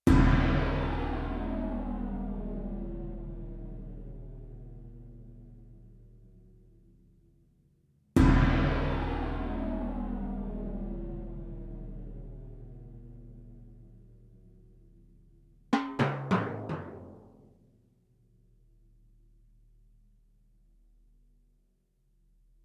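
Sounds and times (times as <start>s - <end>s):
sampled timpani on a Yamaha TX16W: 0.0s - 5.8s, 8.2s - 14.8s, 15.7s - 17.7s.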